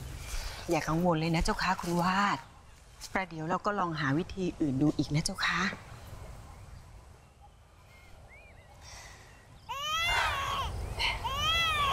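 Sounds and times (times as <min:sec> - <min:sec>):
speech: 0:00.7 - 0:05.9
baby wailing: 0:09.7 - 0:11.9.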